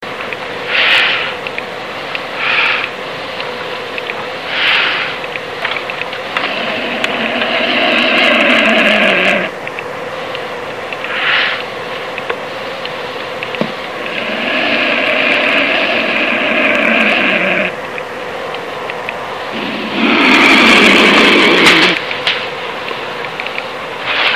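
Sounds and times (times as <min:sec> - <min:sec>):
black vulture call in Belize: 0:00.7 - 0:01.4, 0:02.3 - 0:03.0, 0:04.5 - 0:05.2, 0:06.3 - 0:09.6, 0:11.0 - 0:11.7, 0:13.9 - 0:17.8, 0:19.5 - 0:22.1.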